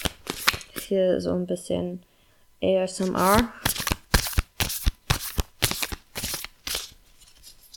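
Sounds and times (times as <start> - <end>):
deck of cards shuffled by hand: 0.0 - 0.9, 3.0 - 7.7
speech: 0.9 - 3.7.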